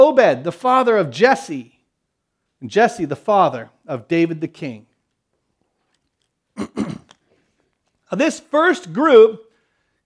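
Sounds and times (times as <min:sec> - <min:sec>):
speech: 0:00.1 - 0:01.8, 0:02.6 - 0:04.9, 0:06.6 - 0:06.9, 0:08.1 - 0:09.4
throat clearing during a spoken Bible reading: 0:06.6 - 0:07.2.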